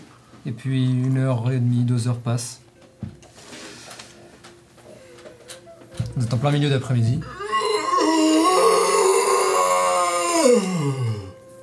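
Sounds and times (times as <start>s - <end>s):
speech: 0.4s - 2.6s, 6.2s - 7.4s, 10.4s - 11.1s
loud yawn: 7.2s - 11.4s.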